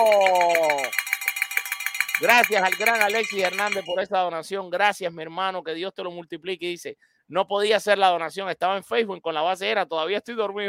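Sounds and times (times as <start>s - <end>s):
speech: 0.0s - 1.1s, 2.2s - 10.6s
handbell rung to mark a donation: 0.0s - 4.0s.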